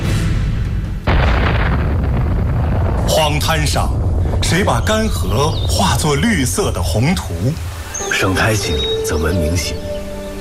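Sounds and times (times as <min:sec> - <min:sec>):
atomic bomb explosion: 0:01.0 - 0:06.7
speech: 0:03.3 - 0:09.9.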